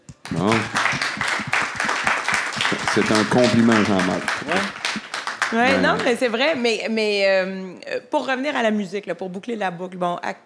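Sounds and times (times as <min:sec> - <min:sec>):
a few people clapping their hands: 0:00.0 - 0:06.6
speech: 0:00.3 - 0:00.8, 0:03.0 - 0:04.7, 0:05.5 - 0:10.4
vocal exclamation: 0:05.6 - 0:06.1.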